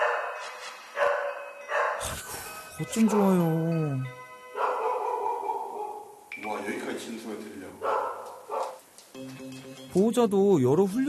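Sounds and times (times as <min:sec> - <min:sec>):
agitated dog barking at noise from another household: 0:00.0 - 0:00.4, 0:01.0 - 0:02.0, 0:03.0 - 0:03.4, 0:04.6 - 0:06.2, 0:07.8 - 0:08.8
speech: 0:02.8 - 0:04.2, 0:06.5 - 0:08.0, 0:09.2 - 0:11.0.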